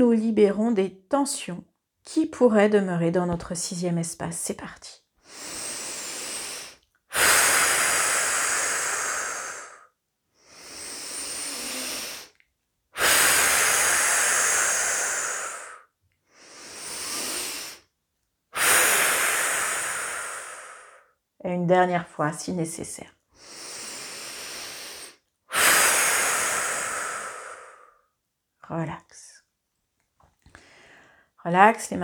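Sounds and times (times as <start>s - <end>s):
speech: 0.0s - 5.6s, 21.4s - 23.2s, 28.7s - 29.2s, 31.4s - 32.0s
slow breathing out during a relaxation exercise: 5.2s - 12.4s, 13.0s - 17.9s, 18.6s - 21.1s, 23.3s - 28.1s, 30.5s - 31.3s.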